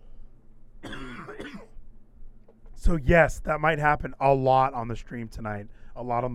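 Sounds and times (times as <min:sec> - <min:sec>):
hum: 0:00.0 - 0:06.3
harsh throaty cough: 0:00.8 - 0:01.8
speech: 0:02.8 - 0:06.3.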